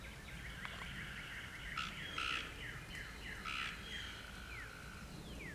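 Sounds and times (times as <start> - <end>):
background chorus noise: 0.1 - 5.5
Cope's gray treefrog giving brief rasping trilled bursts in Arkansas, United States: 1.1 - 2.5, 3.5 - 5.1.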